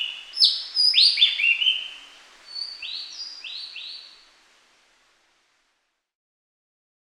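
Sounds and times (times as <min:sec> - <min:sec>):
Javan green magpie Cissa thalassina whistled calls: 0:00.0 - 0:02.0.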